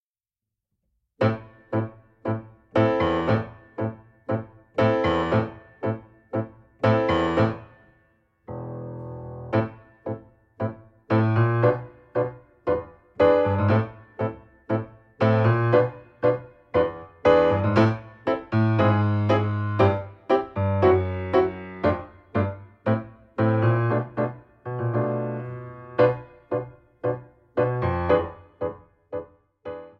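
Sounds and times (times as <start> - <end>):
piano playalong: 1.2 - 29.9.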